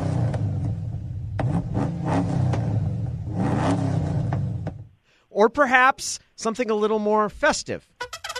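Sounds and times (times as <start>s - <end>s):
powerful throaty engine revving: 0.0s - 4.8s
speech: 5.4s - 8.2s.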